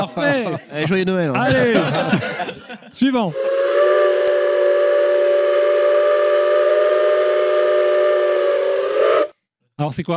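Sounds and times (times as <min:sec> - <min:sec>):
laughter: 0:00.0 - 0:03.0
speech: 0:00.1 - 0:03.6, 0:09.8 - 0:10.1
steam locomotive whistle: 0:03.3 - 0:09.3.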